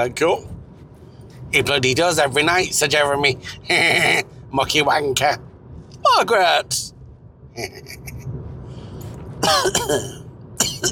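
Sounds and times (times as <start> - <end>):
speech: 0.0 - 0.6, 1.5 - 7.0, 7.6 - 8.1, 9.4 - 10.2
person clearing throat: 9.4 - 10.9
person coughing in harsh bursts: 9.4 - 10.9.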